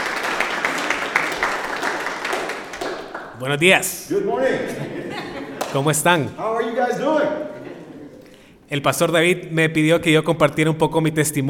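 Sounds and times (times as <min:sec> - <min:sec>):
large audience applauding: 0:00.0 - 0:03.5, 0:05.1 - 0:06.0
speech: 0:03.4 - 0:07.6, 0:08.7 - 0:11.4
laughter: 0:04.1 - 0:08.4.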